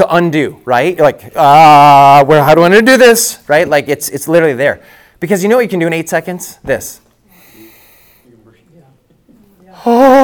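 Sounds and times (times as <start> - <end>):
speech: 0.0 - 7.0, 9.8 - 10.2
deep breath in demonstrating box breathing: 4.8 - 5.2, 7.2 - 8.3.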